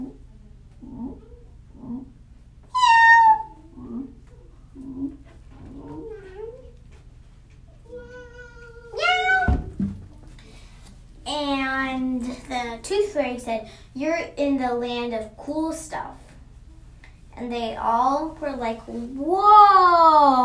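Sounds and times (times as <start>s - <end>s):
low steady hum: 0.0s - 20.4s
voice imitating a cat meowing: 2.7s - 4.1s, 8.0s - 9.5s
speech: 13.2s - 16.2s, 17.4s - 20.4s.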